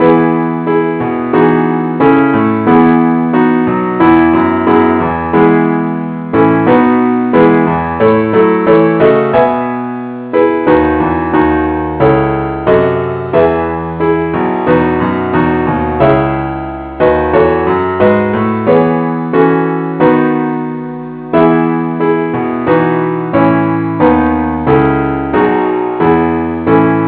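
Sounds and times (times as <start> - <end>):
keyboard playing in the key of E: 0.0 - 27.0.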